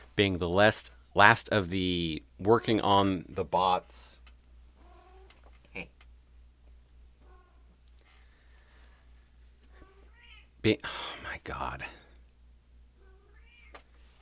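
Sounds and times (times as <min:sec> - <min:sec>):
low steady hum: 0:00.0 - 0:14.2
speech: 0:00.2 - 0:04.2, 0:10.6 - 0:12.0
cat meowing: 0:09.8 - 0:10.5, 0:13.0 - 0:13.8.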